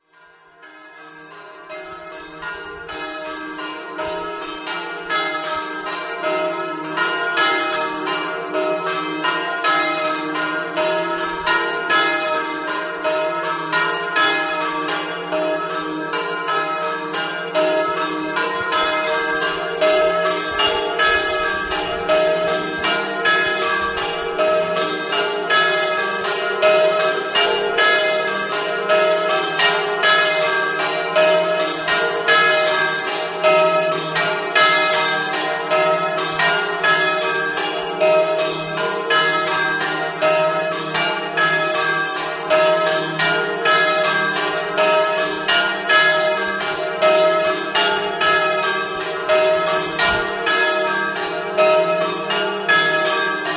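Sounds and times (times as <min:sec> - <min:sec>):
church bells ringing: 0:00.0 - 0:53.5.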